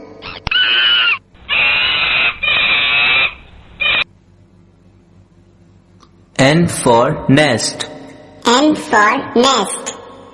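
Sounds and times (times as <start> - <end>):
monkey screeching: 0.2 - 4.0
speech: 6.6 - 7.9, 8.5 - 9.9.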